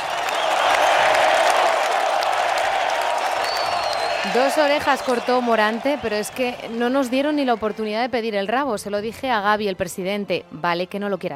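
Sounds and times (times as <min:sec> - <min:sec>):
large crowd clapping in sustained ovation: 0:00.0 - 0:08.6
speech: 0:04.3 - 0:11.3.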